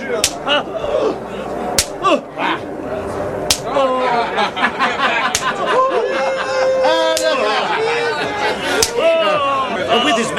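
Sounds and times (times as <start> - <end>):
laughter: 0.0 - 2.7, 3.7 - 10.3
clamorous crowd voices: 0.0 - 10.3
speech: 0.1 - 1.3
sharp whip lashes striking a person: 0.2 - 0.4, 1.8 - 2.0, 3.5 - 3.7
people crying out: 0.3 - 2.6, 3.7 - 10.3.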